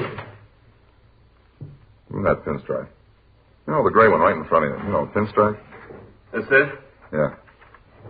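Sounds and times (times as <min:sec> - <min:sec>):
closet door being opened: 0:00.0 - 0:00.5, 0:04.5 - 0:06.8
low room hum: 0:00.0 - 0:08.0
speech: 0:02.2 - 0:03.0, 0:03.7 - 0:05.7, 0:06.3 - 0:07.4.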